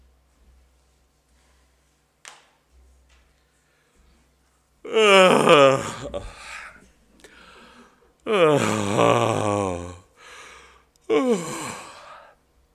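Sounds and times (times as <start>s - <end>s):
person yawning loudly: 4.9s - 6.8s, 8.2s - 10.1s, 11.1s - 12.3s.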